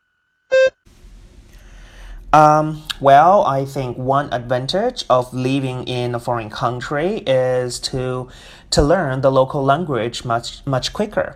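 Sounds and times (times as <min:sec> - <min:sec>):
short electronic beep signalling the start of a spoken response: 0:00.5 - 0:00.8
low room noise: 0:00.9 - 0:11.3
speech: 0:02.3 - 0:11.3.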